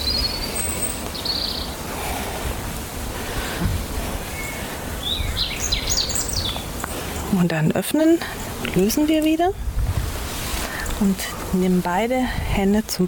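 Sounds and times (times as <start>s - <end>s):
birds chirping and singing outdoors: 0.0s - 9.4s
steady hissing outdoor background: 0.0s - 13.0s
speech: 7.3s - 9.7s, 11.0s - 13.0s.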